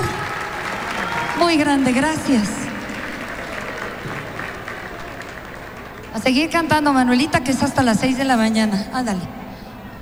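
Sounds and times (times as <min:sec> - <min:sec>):
audience applause: 0:00.0 - 0:06.6
speech: 0:01.4 - 0:02.6, 0:06.2 - 0:09.4.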